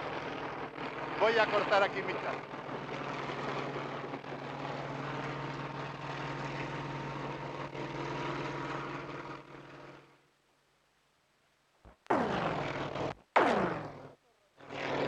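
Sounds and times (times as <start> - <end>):
helicopter deep engine drone: 0.0 - 10.2, 11.9 - 15.0
helicopter rotors roaring overhead: 0.0 - 10.2, 11.9 - 15.0
speech: 1.2 - 2.6
short sharp noise bursts: 11.9 - 14.1.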